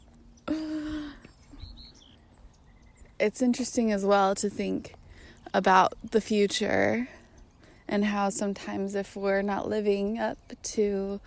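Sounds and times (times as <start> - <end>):
faint high bird chirps: 0.0 - 3.2
speech: 3.2 - 7.2, 7.9 - 11.2.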